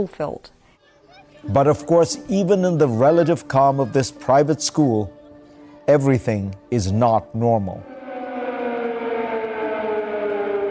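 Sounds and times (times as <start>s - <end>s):
speech: 0.0s - 0.6s, 1.4s - 5.2s, 5.9s - 7.9s
air raid siren wailing in Kyiv: 7.6s - 10.6s.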